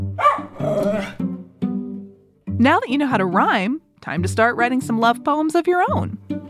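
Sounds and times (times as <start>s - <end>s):
small puppy barking and yipping: 0.2s - 1.2s
speech: 2.6s - 6.2s.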